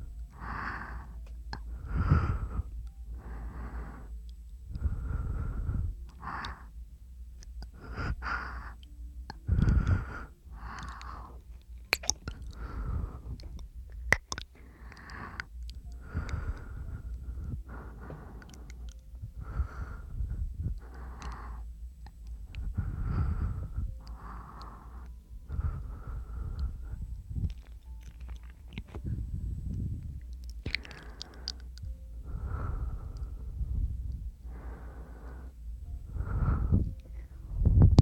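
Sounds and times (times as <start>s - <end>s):
person breathing in short airy breaths: 0.0s - 6.8s, 7.6s - 11.6s, 12.3s - 13.7s, 14.4s - 37.9s.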